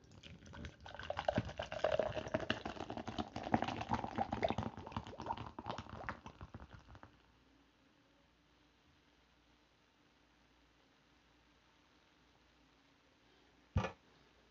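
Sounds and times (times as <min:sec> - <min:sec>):
pomegranate kombucha pouring into a glass: 0:00.0 - 0:07.2.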